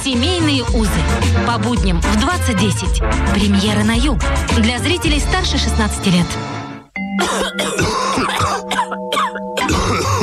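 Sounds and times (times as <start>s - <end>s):
speech: 0.1s - 6.5s
person coughing harshly: 7.2s - 10.2s.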